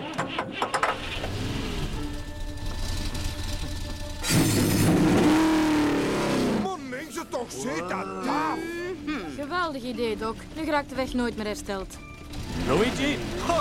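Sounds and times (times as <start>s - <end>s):
race car engines starting and revving at the beginning of a race: 0.8s - 6.7s, 9.0s - 13.5s
speech: 7.5s - 8.7s, 9.4s - 13.5s.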